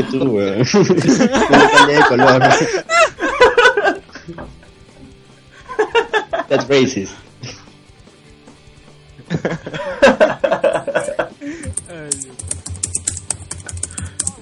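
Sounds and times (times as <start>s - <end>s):
speech: 0.0s - 3.1s, 6.5s - 7.2s
people chuckling and laughing: 0.0s - 4.7s, 5.5s - 6.9s, 9.2s - 11.7s
typing on a computer keyboard: 11.6s - 14.4s.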